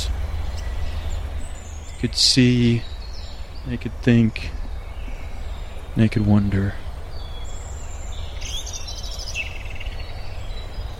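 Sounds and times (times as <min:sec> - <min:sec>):
birds singing outdoors: 0:00.0 - 0:10.9
low ambient rumble: 0:00.0 - 0:10.9
speech: 0:02.0 - 0:02.9, 0:03.6 - 0:04.6, 0:06.0 - 0:06.8.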